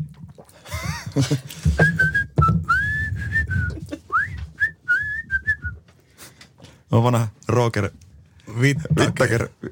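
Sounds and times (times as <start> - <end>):
laughter: 0.7 - 1.5
speech: 1.2 - 2.0, 7.0 - 8.0, 8.6 - 9.7
person whistling a short melodic tune: 1.8 - 5.8.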